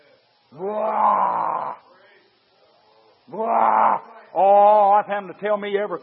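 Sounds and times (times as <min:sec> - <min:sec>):
man imitating a lion's roar: 0:00.6 - 0:01.8, 0:03.3 - 0:04.9
speech: 0:03.3 - 0:06.0.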